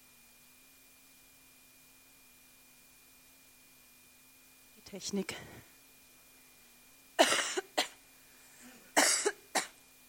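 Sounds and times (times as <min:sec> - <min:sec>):
speech: 0:04.9 - 0:05.6
person coughing: 0:07.2 - 0:08.0, 0:08.6 - 0:09.8.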